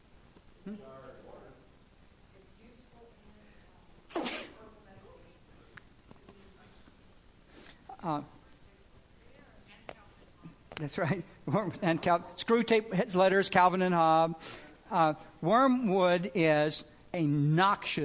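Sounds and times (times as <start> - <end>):
room noise: 0.0 - 18.0
faint murmur of voices: 2.3 - 10.7
person sneezing: 4.1 - 4.6
speech: 8.1 - 8.4, 10.8 - 18.0.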